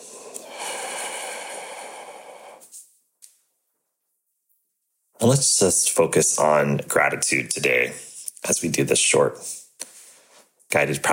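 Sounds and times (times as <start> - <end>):
deep breath exhaled from the mouth during a guided gratitude meditation: 0.0 - 2.8
faint breath puffs: 0.0 - 2.9, 9.4 - 10.6
speech: 5.2 - 9.6, 10.7 - 11.1.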